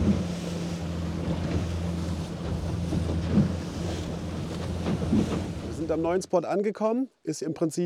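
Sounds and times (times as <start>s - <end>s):
boat engine droning on a fishing outing: 0.0s - 6.1s
water slapping and churning against the hull in a rough swell: 0.0s - 6.1s
speech: 5.9s - 7.8s.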